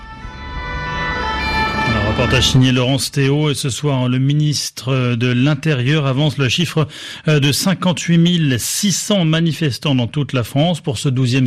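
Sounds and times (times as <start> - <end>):
first-aid emergency truck siren wailing: 0.0 - 3.1
speech: 2.2 - 11.4.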